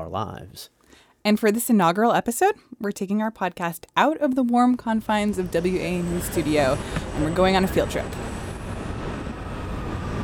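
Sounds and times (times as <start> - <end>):
speech: 0.0 - 8.3
train running on rails at a metro platform: 4.9 - 10.2
faint high whine: 5.0 - 10.2.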